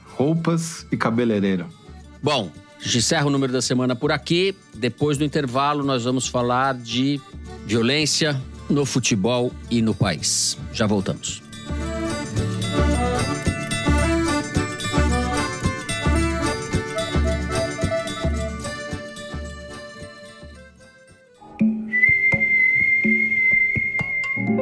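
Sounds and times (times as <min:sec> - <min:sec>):
speech: 0:00.2 - 0:11.8
high whistled tune: 0:11.2 - 0:21.0, 0:21.6 - 0:24.6
rhythmic music with a strong beat: 0:11.4 - 0:20.7.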